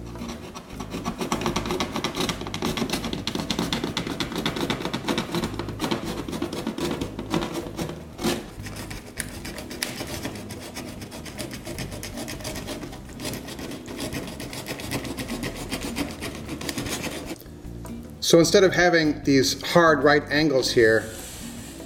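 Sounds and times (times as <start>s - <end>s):
sharp blade cutting an angled bevel along board edges: 0.0s - 17.4s
speech: 18.3s - 21.2s.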